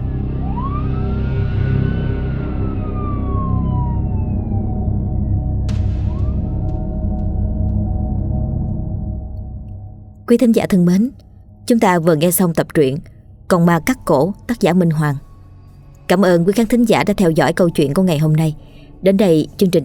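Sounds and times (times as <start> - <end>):
police car siren wailing: 0.0 - 8.5
dense loud low rumble: 0.0 - 19.0
speech: 10.3 - 15.3, 16.1 - 19.8.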